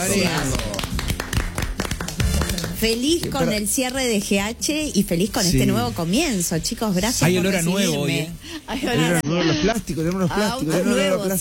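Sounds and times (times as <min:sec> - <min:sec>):
speech: 0:00.0 - 0:00.8, 0:02.8 - 0:11.3
studio audience clapping on a television talk show: 0:00.0 - 0:04.3.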